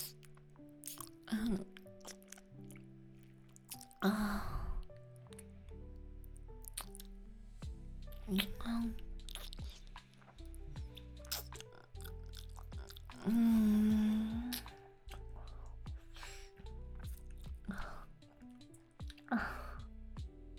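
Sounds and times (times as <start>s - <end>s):
wet chewing and smacking of someone eating ice cream: 0.0s - 2.9s, 3.5s - 4.0s, 6.6s - 7.2s, 8.3s - 19.6s.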